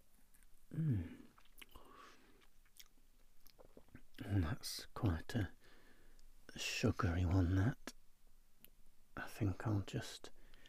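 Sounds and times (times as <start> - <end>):
soft chewing of an artisan flapjack: 0.0 - 4.3
speech: 0.8 - 1.2, 4.5 - 5.6, 6.6 - 7.9, 9.4 - 10.4.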